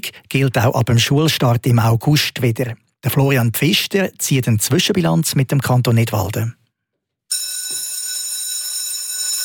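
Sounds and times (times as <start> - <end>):
speech: 0.0 - 6.6
school bell ringing: 7.3 - 9.4.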